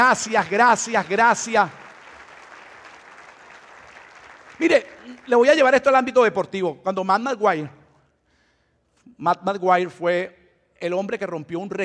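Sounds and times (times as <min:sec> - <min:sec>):
speech: 0:00.0 - 0:01.8, 0:04.6 - 0:07.8, 0:09.1 - 0:11.8
audience applauding: 0:00.0 - 0:05.7.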